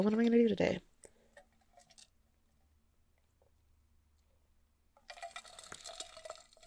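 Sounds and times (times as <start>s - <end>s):
speech: 0.0s - 0.9s
person drinking water: 1.0s - 2.2s, 5.0s - 6.6s.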